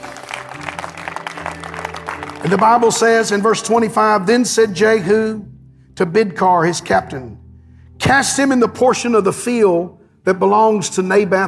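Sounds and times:
congregation applauding: 0.0 - 3.7
speech: 2.4 - 7.4, 8.0 - 11.4.

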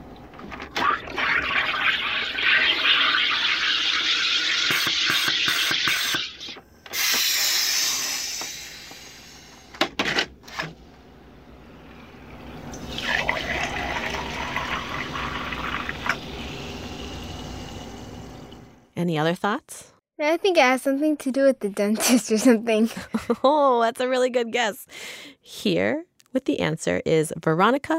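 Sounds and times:
home soda maker carbonating water: 0.8 - 9.9, 11.0 - 18.8
speech: 19.2 - 25.0, 25.6 - 27.9.

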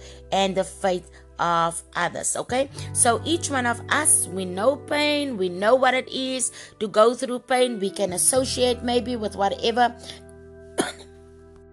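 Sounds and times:
speech: 0.3 - 10.2
person coming down with the flu coughing: 10.8 - 11.2.

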